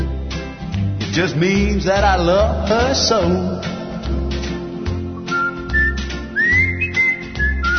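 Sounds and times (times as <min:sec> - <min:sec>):
band backing with bass and drums: 0:00.0 - 0:07.7
speech: 0:01.2 - 0:03.8
person whistling a bright gliding melody: 0:05.2 - 0:07.7.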